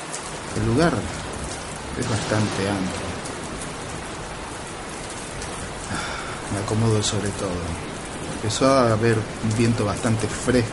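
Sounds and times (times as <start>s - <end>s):
steady rain: 0.0s - 10.7s
speech: 0.6s - 1.2s, 2.0s - 3.1s, 5.9s - 10.7s.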